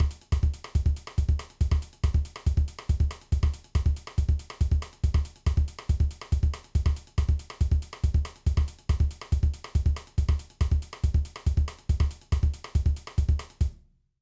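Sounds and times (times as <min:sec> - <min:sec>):
samba drums: 0:00.0 - 0:13.7.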